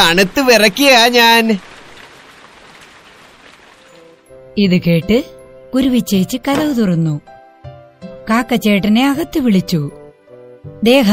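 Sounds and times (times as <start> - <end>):
speech: 0.0 - 1.7, 4.6 - 7.3, 8.3 - 10.0, 10.7 - 11.1
heavy rain: 0.0 - 4.8.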